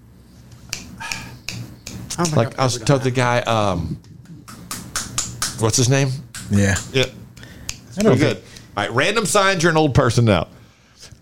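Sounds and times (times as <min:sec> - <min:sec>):
low hum: 0:00.0 - 0:11.2
finger snapping: 0:00.7 - 0:02.4, 0:04.0 - 0:05.6, 0:06.3 - 0:08.7
speech: 0:02.2 - 0:04.1, 0:05.6 - 0:07.2, 0:08.0 - 0:10.6.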